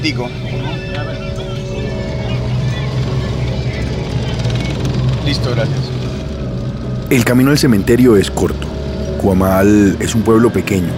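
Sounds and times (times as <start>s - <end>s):
speech: 0.0s - 1.1s, 5.2s - 6.0s, 7.1s - 10.9s
motorcycle engine droning during a ride: 0.0s - 10.9s
voices: 0.0s - 10.9s.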